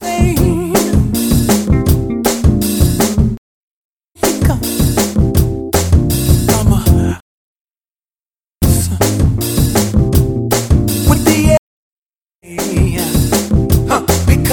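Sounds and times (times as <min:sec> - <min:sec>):
cheerful keyboard music: 0:00.0 - 0:03.4, 0:04.2 - 0:07.2, 0:08.6 - 0:11.6, 0:12.4 - 0:14.5.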